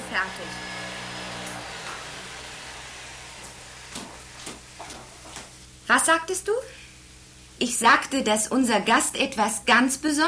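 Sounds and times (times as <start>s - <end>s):
vacuum cleaner running then switched off: 0.0s - 5.6s
speech: 0.1s - 0.8s, 5.9s - 6.8s, 7.6s - 10.2s.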